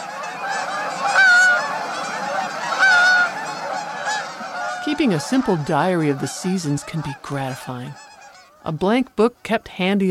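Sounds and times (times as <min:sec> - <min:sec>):
Canada geese honking overhead: 0:00.0 - 0:09.6
speech: 0:05.0 - 0:08.0, 0:08.6 - 0:10.0.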